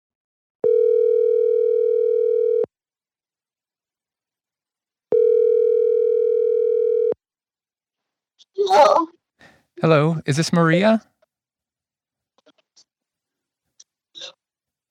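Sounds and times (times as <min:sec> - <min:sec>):
ringback tone of an outgoing telephone call: 0:00.6 - 0:02.7, 0:05.1 - 0:07.2
speech: 0:09.8 - 0:11.1.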